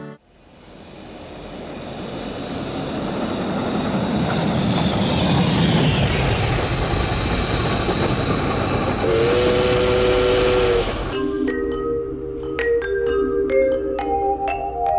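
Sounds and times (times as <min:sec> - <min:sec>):
train rumbling along rails: 0:00.3 - 0:11.6
sustained train whistle: 0:09.0 - 0:11.3
twinkling chime-like notes: 0:11.1 - 0:14.9.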